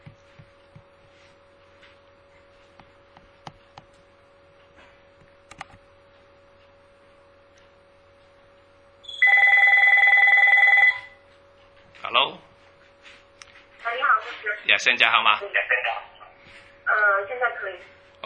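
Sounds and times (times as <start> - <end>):
steady low hum: 0.0 - 18.2
electronic telephone ring of an outgoing call: 9.0 - 11.2
speech: 14.7 - 15.8.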